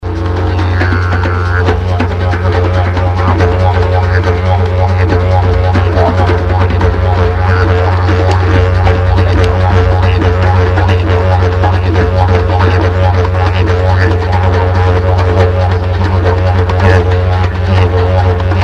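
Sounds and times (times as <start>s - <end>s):
didgeridoo: 0.0s - 18.6s.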